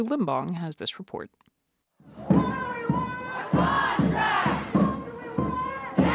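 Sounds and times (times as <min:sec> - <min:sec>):
speech: 0:00.0 - 0:02.4
crowd of striking workers chanting at a rally: 0:02.1 - 0:06.1.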